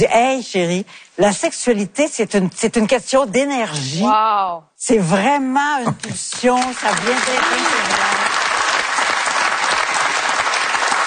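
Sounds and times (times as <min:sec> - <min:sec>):
speech: 0:00.0 - 0:08.2
audience applause: 0:06.6 - 0:11.0.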